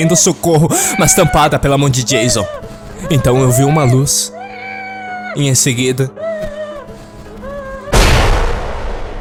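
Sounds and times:
speech: 0.0s - 4.3s, 5.3s - 6.6s
loud explosion sound effect with roaring rumble: 7.9s - 9.1s.

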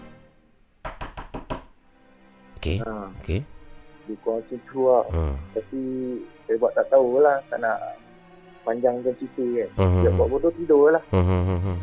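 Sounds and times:
sharp knocks on a hard surface imitating a window knock: 0.8s - 1.8s
speech: 2.6s - 11.8s.

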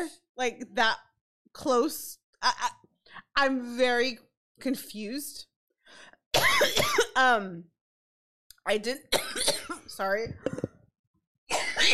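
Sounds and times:
speech: 0.0s - 2.8s, 3.4s - 7.7s, 8.7s - 10.7s
person coughing after inhaling wrong: 6.4s - 7.2s, 9.2s - 10.7s, 11.5s - 11.9s.

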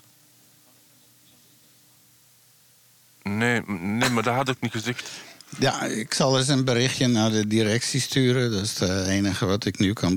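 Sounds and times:
faint low hum: 0.0s - 10.1s
steady broadband static hiss: 0.0s - 10.1s
speech: 3.5s - 10.1s.

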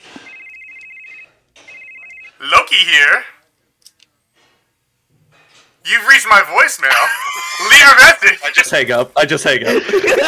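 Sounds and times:
telephone ringing with an electronic trill: 0.0s - 2.9s
speech: 2.4s - 3.4s, 5.8s - 10.2s
laughter: 6.9s - 7.9s, 9.5s - 10.2s.

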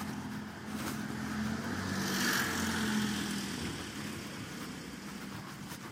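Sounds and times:
car passing by: 0.0s - 5.7s.

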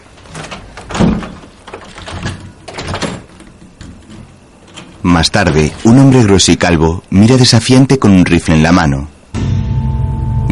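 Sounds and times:
door being closed and locked with a key: 0.2s - 5.7s
speech: 5.2s - 9.5s.

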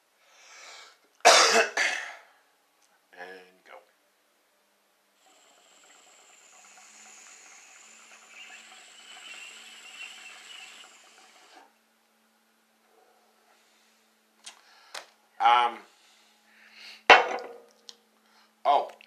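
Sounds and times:
faint steady hiss: 0.0s - 19.0s
person coughing after inhaling a dab: 1.2s - 2.3s.

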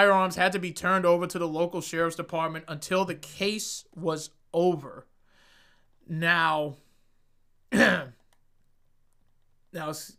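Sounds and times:
speech: 0.0s - 5.1s, 6.1s - 6.8s, 7.7s - 8.2s, 9.7s - 10.1s
person clearing throat: 7.7s - 8.2s.

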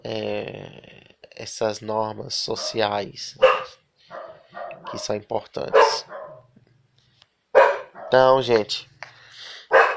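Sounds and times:
speech: 1.4s - 3.5s, 4.9s - 6.1s, 8.1s - 8.9s
female pet dog barking loudly: 2.6s - 6.5s, 7.5s - 8.3s, 9.7s - 9.9s.

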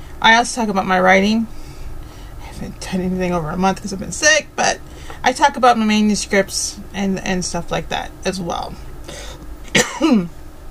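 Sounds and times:
speech: 0.2s - 1.6s, 2.6s - 9.2s, 10.0s - 10.4s
sharp cough: 9.7s - 10.3s.

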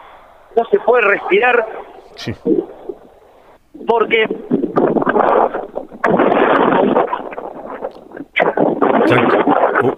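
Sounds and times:
speech: 0.6s - 2.8s, 3.8s - 5.7s, 9.1s - 9.9s
strong wind gusting outdoors at a fire scene buffeting the microphone: 0.6s - 9.9s.

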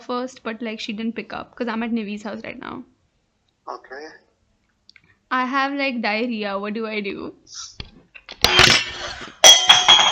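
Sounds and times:
speech: 0.1s - 2.9s, 3.7s - 4.2s, 5.3s - 7.8s
dropped glass crashing on a hard surface: 8.4s - 10.1s.

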